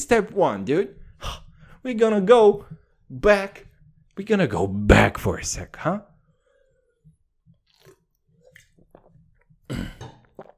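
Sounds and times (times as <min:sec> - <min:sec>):
speech: 0:00.0 - 0:06.1
person gulping and swallowing water: 0:07.4 - 0:10.5.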